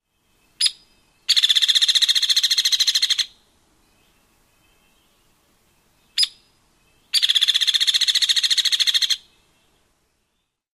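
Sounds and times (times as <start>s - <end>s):
hairy woodpecker call with sharp peek and high-pitched rattle: 0.6s - 3.4s, 6.1s - 6.5s, 7.1s - 9.3s.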